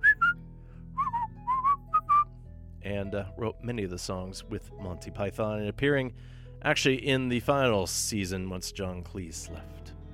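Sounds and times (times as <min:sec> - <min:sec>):
whistled melody of clear bright notes in a bouncy rhythm: 0:00.0 - 0:02.5
speech: 0:02.8 - 0:10.0.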